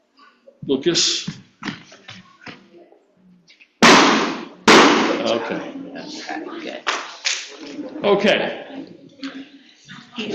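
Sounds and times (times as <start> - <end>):
speech: 0.7 - 1.4, 5.3 - 7.0, 7.6 - 8.9
balloons popping: 3.8 - 5.3.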